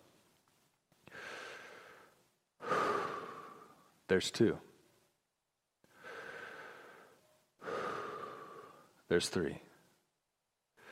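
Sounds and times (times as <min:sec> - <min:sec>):
deep breath: 0:01.0 - 0:03.9, 0:05.9 - 0:09.0
speech: 0:04.1 - 0:04.7, 0:09.1 - 0:09.7.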